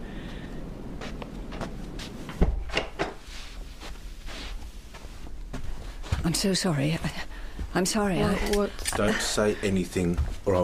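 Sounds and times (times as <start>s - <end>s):
faint rustling: 0.1s - 10.6s
door swinging shut with a solid thud: 2.3s - 3.2s
speech: 6.3s - 10.6s.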